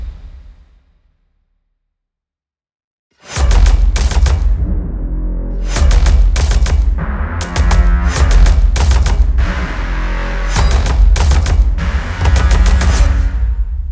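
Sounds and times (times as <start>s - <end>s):
disruptor percussive sound design effect: 3.3s - 5.0s, 5.6s - 13.7s.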